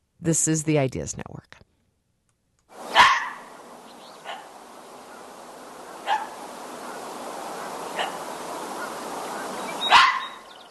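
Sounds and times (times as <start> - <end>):
steady hiss of outdoor noise: 0.0 - 10.6
speech: 0.2 - 1.7
fox barking with sharp hoarse yelps: 2.9 - 3.6, 4.2 - 5.3, 5.9 - 9.0, 9.8 - 10.5.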